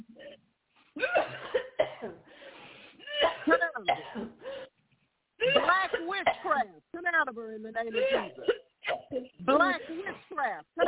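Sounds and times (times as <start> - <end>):
harsh coughing: 1.0 - 2.3, 3.0 - 4.7, 5.4 - 6.6, 7.9 - 10.8
speech: 7.2 - 10.8.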